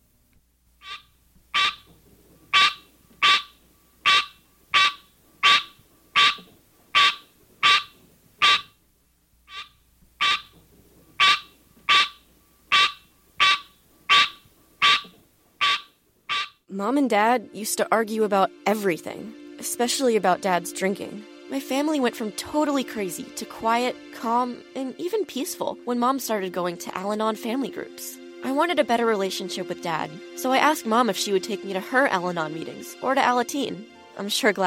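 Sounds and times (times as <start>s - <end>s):
green tree frog calling with nasal bell-like honks: 0.8s - 1.9s, 2.5s - 8.8s, 9.4s - 10.6s, 11.2s - 16.7s
speech: 16.7s - 34.6s.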